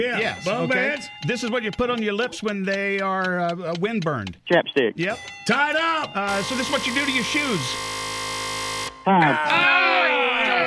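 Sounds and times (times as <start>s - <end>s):
speech: 0.0s - 8.0s, 9.0s - 9.8s
short loud harsh game timer buzzer: 6.1s - 10.6s
voices breaking into a drawn-out groan or exclamation: 9.1s - 10.6s.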